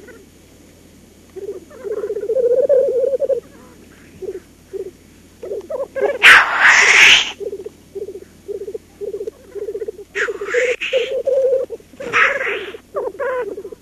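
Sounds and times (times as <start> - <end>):
black grouse bubbling rookoo phrases: 1.3 - 13.8
black grouse rasping hissed sneeze: 6.2 - 7.4, 10.2 - 11.1, 12.0 - 12.8.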